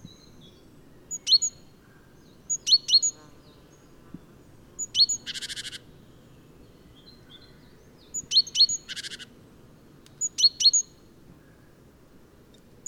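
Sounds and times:
great tit Parus major chinking calls and buzzy rattle: 0:01.1 - 0:03.2, 0:07.0 - 0:09.3, 0:10.1 - 0:11.0.

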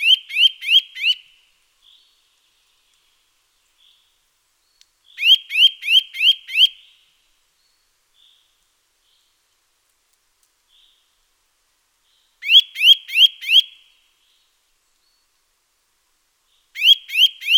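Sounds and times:
Eurasian nuthatch Sitta europaea calling with loud rising whistles: 0:05.2 - 0:06.8, 0:12.4 - 0:13.7, 0:16.8 - 0:17.5.

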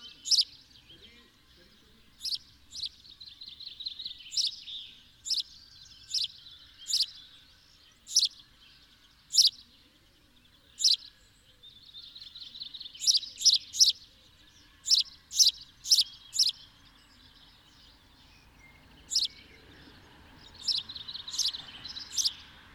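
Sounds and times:
house sparrow Passer domesticus chirping: 0:00.0 - 0:22.7.

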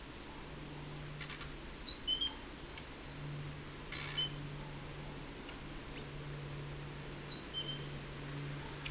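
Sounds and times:
low steady hum: 0:00.0 - 0:08.8
great tit Parus major calls: 0:00.1 - 0:02.9, 0:03.8 - 0:05.0, 0:07.2 - 0:07.9.

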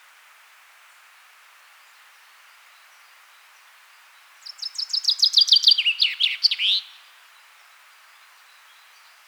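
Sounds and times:
common chaffinch (Fringilla coelebs) song: 0:04.4 - 0:06.9.

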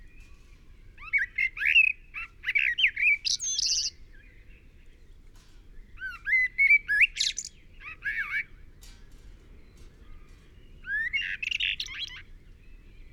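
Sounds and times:
common blackbird Turdus merula singing: 0:00.0 - 0:13.1.

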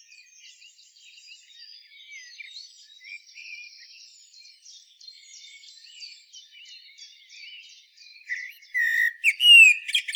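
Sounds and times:
common blackbird Turdus merula singing: 0:08.3 - 0:10.1.

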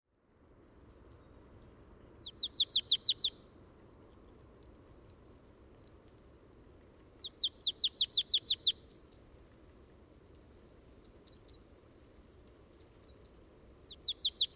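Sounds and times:
low background noise: 0:00.1 - 0:14.5
Poecile palustris calling: 0:02.2 - 0:03.3, 0:07.2 - 0:08.8, 0:13.8 - 0:14.5.

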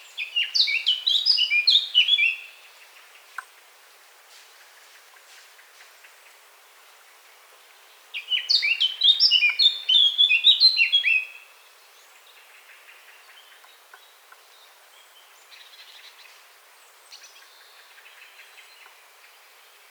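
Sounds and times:
Eurasian blackcap song, Sylvia atricapilla: 0:00.1 - 0:02.6, 0:08.2 - 0:11.4.

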